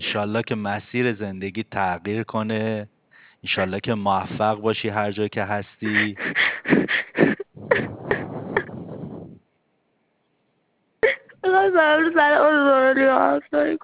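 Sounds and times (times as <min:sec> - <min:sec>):
speech: 0:00.1 - 0:06.8, 0:11.6 - 0:13.8
person crying with gasping hiccuping sobs: 0:05.8 - 0:09.4, 0:11.0 - 0:13.4.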